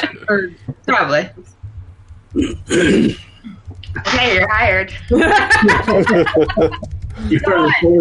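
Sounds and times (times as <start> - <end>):
speech: 0.3 - 1.6, 2.3 - 8.0
person screeching in imitation of an angry owl: 2.4 - 3.3
laughter: 2.4 - 8.0.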